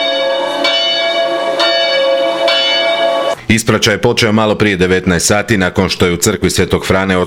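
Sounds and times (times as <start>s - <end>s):
church bells ringing: 0.0s - 3.4s
speech: 3.5s - 7.2s.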